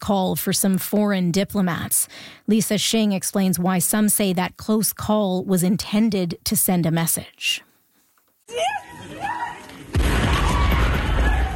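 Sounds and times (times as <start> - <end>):
speech: 0.1 - 7.7, 8.5 - 9.3
people shouting and crying out: 8.5 - 11.5
explosion destroying a train: 9.9 - 11.5.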